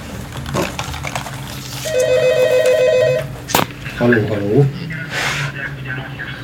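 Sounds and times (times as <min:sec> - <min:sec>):
noise: 0:00.0 - 0:06.4
telephone ringing in a warbling electronic trill: 0:01.8 - 0:03.4.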